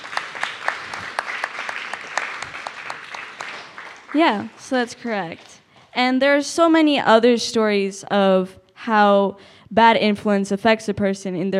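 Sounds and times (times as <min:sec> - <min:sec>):
small group clapping: 0:00.0 - 0:05.6
speech: 0:04.1 - 0:11.5.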